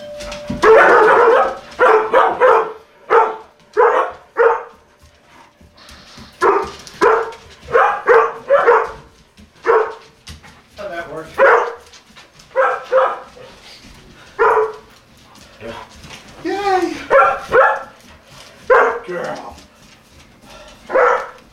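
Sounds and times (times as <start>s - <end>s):
collie dogs running and barking: 0.6s - 4.8s, 6.4s - 10.2s, 11.3s - 11.9s, 12.5s - 13.6s, 14.4s - 14.9s, 17.1s - 19.5s, 20.9s - 21.4s.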